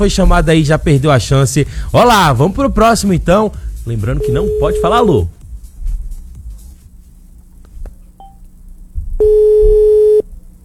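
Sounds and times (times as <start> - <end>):
speech: 0.0 - 5.4
faint low hum: 0.0 - 10.6
telephone call ringing tone: 9.2 - 10.2.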